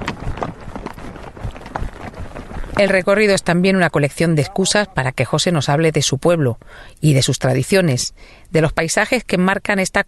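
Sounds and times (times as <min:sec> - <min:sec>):
horse hooves trotting during a riding outing: 0:00.0 - 0:05.8
speech: 0:02.8 - 0:10.0.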